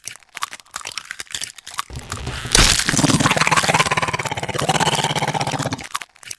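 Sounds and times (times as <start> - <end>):
egg: 1.9 - 5.9.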